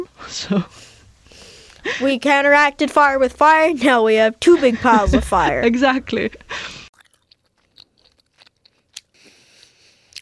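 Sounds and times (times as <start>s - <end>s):
speech: 0.0s - 1.0s, 1.8s - 6.7s
person chewing gum: 6.9s - 10.2s.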